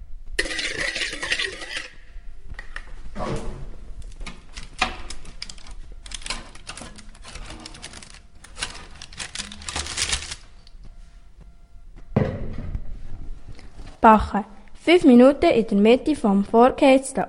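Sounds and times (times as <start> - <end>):
spatula scraping and clicking through thick batter: 0.4 - 2.0
speech: 14.0 - 17.2.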